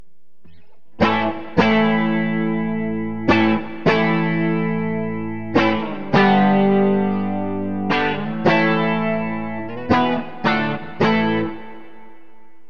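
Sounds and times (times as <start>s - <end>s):
clean guitar on bridge pickup: 0.4s - 12.6s.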